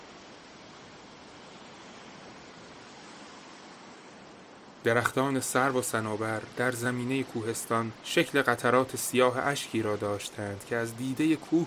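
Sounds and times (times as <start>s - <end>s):
calm sea waves on a starry night: 0.0s - 11.6s
speech: 4.8s - 11.6s.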